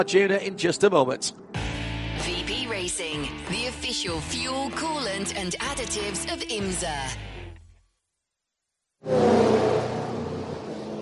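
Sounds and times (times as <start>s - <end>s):
speech: 0.0s - 7.4s, 9.0s - 9.3s
GTP prototype race car engines roaring into pit stalls during an endurance race: 9.1s - 11.0s.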